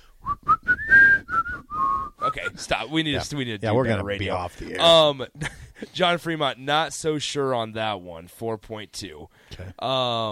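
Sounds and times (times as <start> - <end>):
person whistling a tune: 0.2 - 2.5
speech: 2.4 - 10.3.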